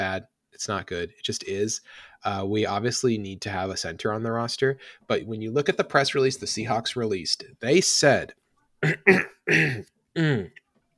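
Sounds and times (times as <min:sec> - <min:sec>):
speech: 0:00.2 - 0:10.6
person clearing throat: 0:08.8 - 0:10.6.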